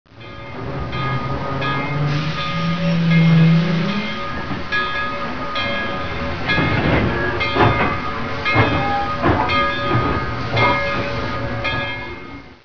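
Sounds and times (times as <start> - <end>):
bell: 0.1 - 12.6
hiss: 1.9 - 4.2.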